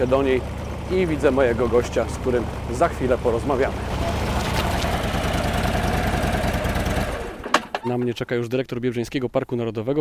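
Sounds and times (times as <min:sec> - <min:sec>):
speech: 0:00.0 - 0:03.9, 0:07.8 - 0:09.9
road motorcycle engine idling at forester's lodge in Biebrza National Park Poland: 0:00.0 - 0:07.9.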